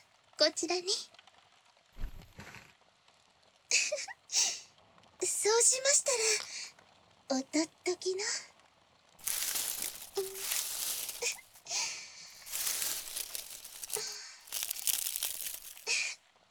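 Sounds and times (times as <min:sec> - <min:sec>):
speech: 0:00.4 - 0:01.2, 0:05.5 - 0:06.5, 0:07.3 - 0:08.5
aluminium foil crinkling and crumpling: 0:09.2 - 0:16.0.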